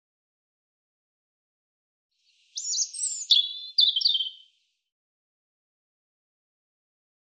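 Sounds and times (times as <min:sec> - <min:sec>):
European robin song: 0:02.2 - 0:04.7.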